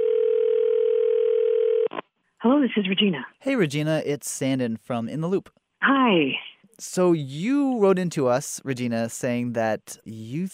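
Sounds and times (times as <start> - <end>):
electronic ringback tone of an outgoing call over a phone line: 0.0 - 1.9
speech: 2.4 - 10.5.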